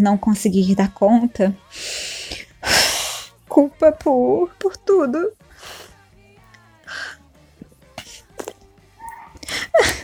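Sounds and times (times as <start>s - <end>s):
speech: 0.0s - 2.8s, 3.6s - 5.8s
shaky gasping breaths: 1.7s - 3.4s, 5.5s - 6.0s, 6.8s - 7.2s, 8.0s - 10.0s
short wet sniffles: 1.8s - 3.4s, 5.5s - 6.0s, 6.9s - 7.2s, 8.0s - 10.0s
woman crying: 9.3s - 10.0s.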